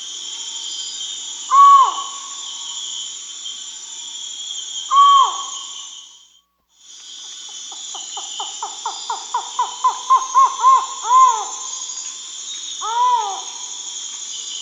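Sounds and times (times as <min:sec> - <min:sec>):
high insect chorus in the Amazon, Peru: 0:00.0 - 0:14.6
Collared forest-falcon Micrastur semitorquatus calls in the Amazon, Peru: 0:01.5 - 0:02.4, 0:04.9 - 0:05.7, 0:08.6 - 0:11.8, 0:12.8 - 0:13.6.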